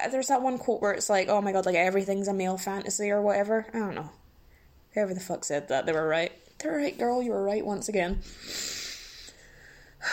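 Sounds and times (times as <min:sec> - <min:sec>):
speech: 0:00.0 - 0:04.2, 0:05.0 - 0:08.8
breathy nasal sniff: 0:08.2 - 0:09.6.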